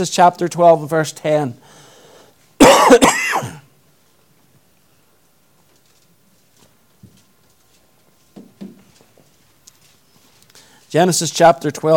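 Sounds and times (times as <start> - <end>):
speech: 0.0 - 1.8, 2.8 - 3.6, 10.9 - 11.9
person coughing: 2.6 - 3.7.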